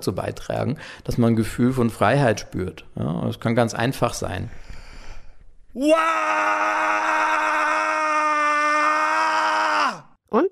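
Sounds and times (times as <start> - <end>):
speech: 0.0 - 4.7, 5.8 - 7.9, 10.3 - 10.5
person screaming loudly outdoors: 5.8 - 10.1.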